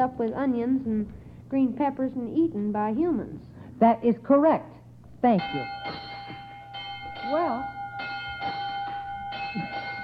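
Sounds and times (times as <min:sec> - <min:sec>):
speech: 0:00.0 - 0:06.1, 0:07.3 - 0:07.8, 0:09.5 - 0:09.8
electric school bell ringing: 0:05.3 - 0:10.0.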